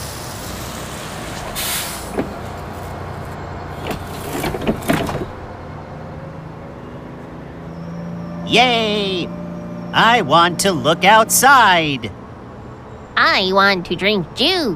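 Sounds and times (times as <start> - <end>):
bus air brakes hissing: 0.0 - 4.2
pneumatic bus doors opening with hisses and thumps: 0.0 - 5.6
bus engine idling with steady rumble: 0.0 - 14.7
speech: 8.5 - 9.4, 10.0 - 12.2, 13.2 - 14.7.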